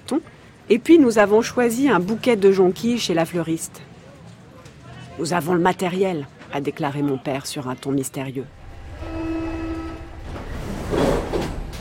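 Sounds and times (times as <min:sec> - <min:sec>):
speech: 0:00.1 - 0:03.9, 0:05.2 - 0:09.1
metro train running to Saint-Michel station: 0:08.5 - 0:11.7
metro train rattling and clattering: 0:10.1 - 0:11.7.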